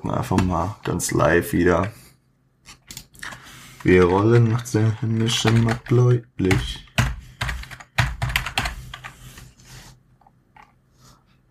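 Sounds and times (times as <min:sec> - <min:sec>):
speech: 0:00.0 - 0:02.0, 0:03.8 - 0:06.8
typing on a computer keyboard: 0:02.9 - 0:09.2.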